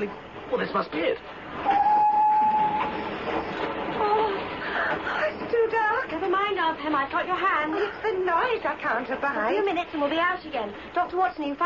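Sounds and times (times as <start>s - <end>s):
speech: 0.0s - 1.8s, 4.9s - 11.6s
train running through a cutting into a tunnel: 0.0s - 11.0s
thin metallic squeal of a train: 1.6s - 3.6s.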